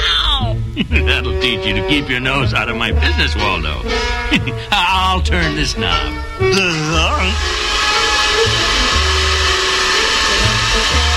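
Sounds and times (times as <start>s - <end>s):
low humming pulses: 0.0s - 11.1s
laughter: 0.2s - 7.4s
speech: 0.8s - 7.8s
whining warbling tones: 1.3s - 11.1s
vacuum cleaner roaring: 5.3s - 11.1s.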